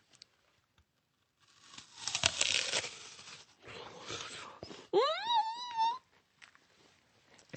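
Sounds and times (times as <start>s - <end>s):
crisp crunching bite into a red Akibae apple: 1.4s - 4.6s
short rising appreciative hum from a voice: 4.9s - 6.0s.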